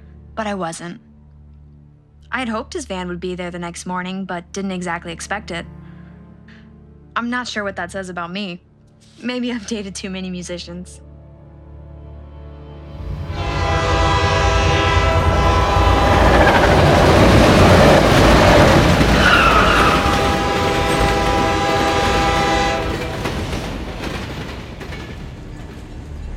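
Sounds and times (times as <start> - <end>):
speech: 0.4 - 1.1, 2.3 - 5.8, 7.2 - 11.0
sustained horn-like tones: 13.0 - 17.3, 18.5 - 23.3
train headed to Syracuse rumbling: 13.0 - 26.3
train wheels clattering: 16.4 - 26.3.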